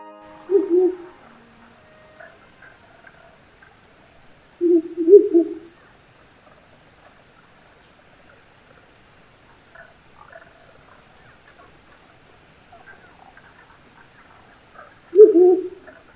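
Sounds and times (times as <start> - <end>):
owl hooting before dawn: 0.4 - 3.2, 4.6 - 5.7, 15.1 - 15.9
faint bird chatter: 0.4 - 16.1.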